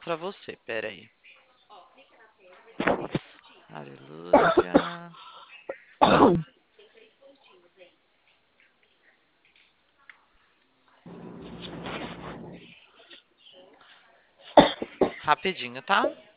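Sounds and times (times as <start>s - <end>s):
speech: 0.0s - 1.2s, 2.8s - 5.2s, 6.2s - 6.5s, 15.3s - 16.3s
person coughing: 4.3s - 5.1s, 6.0s - 6.5s
throat clearing: 4.3s - 5.1s, 5.7s - 6.5s.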